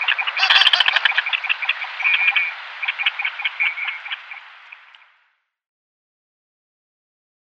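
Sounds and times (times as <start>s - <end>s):
Goosander display call of croaking twangy notes: 0.0s - 5.1s.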